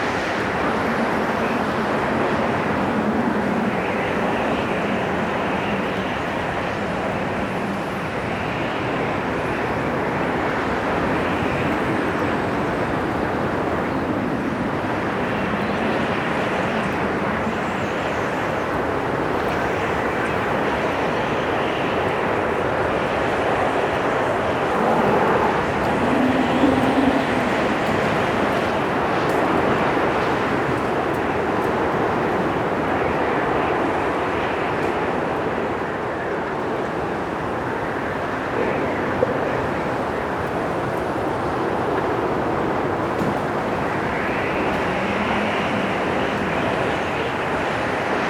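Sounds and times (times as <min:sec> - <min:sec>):
high wind: 0:00.0 - 0:48.2.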